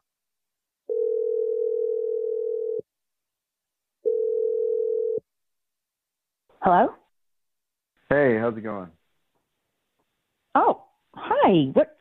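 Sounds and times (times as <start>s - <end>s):
telephone ringback tones: 0.9s - 2.8s, 4.1s - 5.2s
speech: 6.7s - 7.0s, 8.5s - 9.0s, 11.5s - 11.9s.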